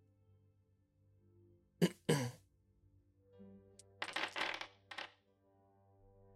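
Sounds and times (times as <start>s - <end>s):
person clearing throat: 1.8s - 2.4s
dice rolled onto a hard surface for a Perception check: 3.8s - 5.2s.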